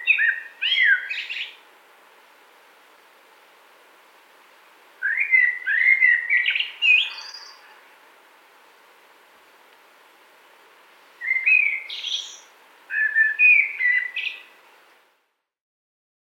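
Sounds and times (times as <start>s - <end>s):
common blackbird song: 0.0s - 1.6s, 5.0s - 8.0s, 11.2s - 14.6s.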